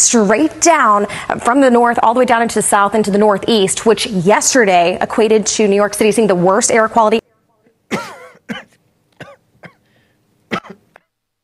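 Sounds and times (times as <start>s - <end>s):
speech: 0.1s - 7.3s
person coughing and clearing their throat: 7.9s - 9.9s, 10.5s - 11.1s.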